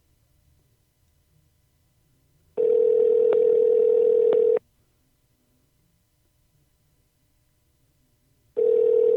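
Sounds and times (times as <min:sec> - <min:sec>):
phone line ringback buzz heard from the caller's end: 0:02.6 - 0:04.6, 0:08.6 - 0:09.1.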